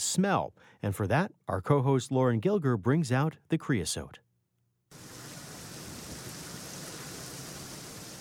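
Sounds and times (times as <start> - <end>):
speech: 0.1 - 4.2
heavy Arizona monsoon thunderstorm downpour: 5.0 - 8.1.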